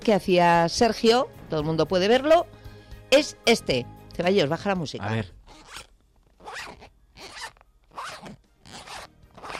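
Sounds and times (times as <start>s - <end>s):
speech: 0.0s - 5.8s
zipper of a glasses case opening and closing: 5.4s - 9.5s.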